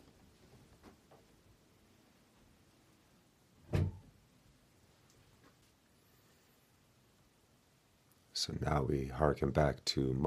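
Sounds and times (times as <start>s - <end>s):
quiet hum: 0.0s - 10.2s
kitchen door shutting: 3.7s - 4.1s
faint small clicks: 5.0s - 5.8s
speech: 8.4s - 10.2s.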